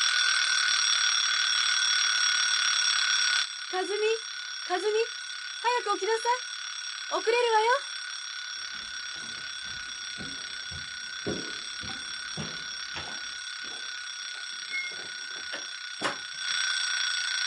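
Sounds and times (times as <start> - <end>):
alarm clock ringing with a shrill electronic tone: 0.0 - 17.4
speech: 3.7 - 6.5, 7.1 - 7.9.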